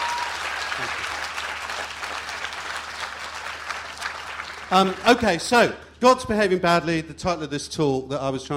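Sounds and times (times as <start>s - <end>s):
scattered cheers: 0.0s - 1.1s
large crowd clapping: 0.0s - 6.0s
speech: 4.7s - 8.5s.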